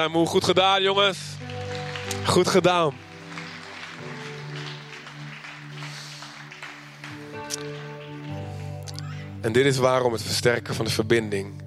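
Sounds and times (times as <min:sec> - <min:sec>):
speech: 0:00.0 - 0:03.1, 0:09.4 - 0:11.6
crowd applauding: 0:00.7 - 0:09.4
sustained keyboard chords: 0:00.8 - 0:11.6.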